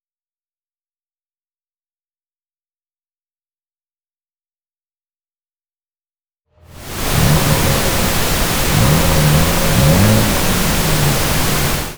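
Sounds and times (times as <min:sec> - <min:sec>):
unattenuated engine revving: 0:06.8 - 0:11.9.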